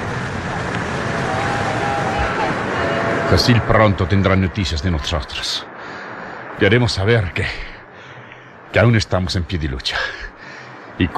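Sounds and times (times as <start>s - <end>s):
ocean waves surging against rocks inside a sea cave: 0.0s - 11.1s
speech: 3.3s - 5.7s, 6.6s - 7.7s, 8.7s - 10.3s, 11.0s - 11.1s.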